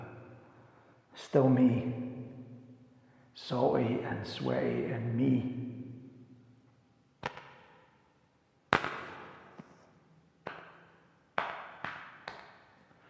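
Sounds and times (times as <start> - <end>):
speech: 1.2 - 2.2, 3.4 - 5.8
man slapping and patting his own face with one hand: 10.4 - 12.6.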